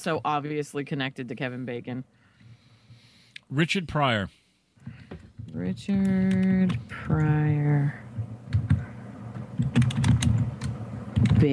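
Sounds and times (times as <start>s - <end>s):
speech: 0.0s - 2.2s, 3.5s - 8.1s, 11.3s - 11.5s
rapid typing on a computer keyboard: 6.0s - 7.3s, 9.6s - 11.5s.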